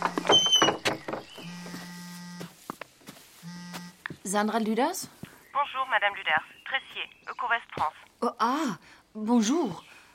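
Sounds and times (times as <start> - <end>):
door creaking and rattling open: 0.0 - 1.5
speech: 4.3 - 9.9.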